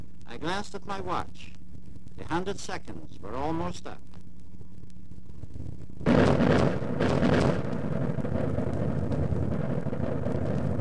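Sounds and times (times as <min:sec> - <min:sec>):
speech: 0:00.4 - 0:01.6, 0:02.2 - 0:04.1
massive distant explosion with thunderous boom and rumble: 0:05.4 - 0:10.7.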